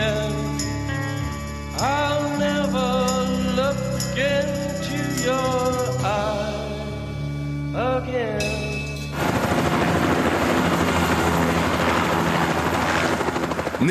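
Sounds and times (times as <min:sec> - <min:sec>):
Bell 205 helicopter rotor roar on a rooftop in Saigon: 0:00.0 - 0:06.0, 0:09.0 - 0:13.8
Bell 205 helicopter engines whining on a rooftop in Saigon: 0:00.0 - 0:07.7, 0:08.4 - 0:13.8.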